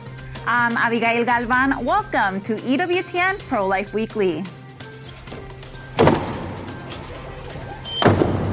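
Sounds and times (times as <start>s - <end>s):
speech: 0.4s - 4.6s
heavy chapel doors closing with deep booming thuds in a large space: 5.2s - 8.5s.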